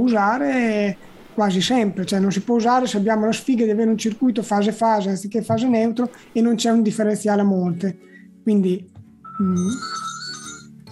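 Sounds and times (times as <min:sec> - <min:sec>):
speech: 0:00.0 - 0:10.1
electronic phone ring with warbling tone: 0:09.2 - 0:10.8.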